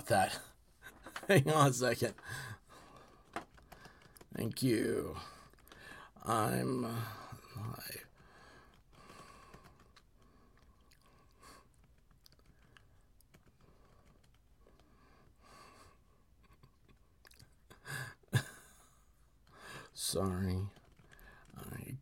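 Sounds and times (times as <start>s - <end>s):
speech: 0.1s - 0.5s, 1.3s - 2.5s, 4.4s - 5.4s, 6.2s - 8.1s, 20.0s - 20.8s
typing on a computer keyboard: 2.8s - 4.6s, 8.1s - 15.3s, 19.8s - 21.8s.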